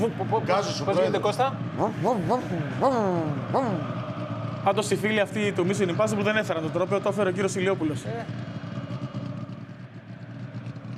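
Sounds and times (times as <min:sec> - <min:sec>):
speech: 0:00.0 - 0:04.0, 0:04.6 - 0:08.5
motor exhaust rumbling: 0:00.0 - 0:10.9.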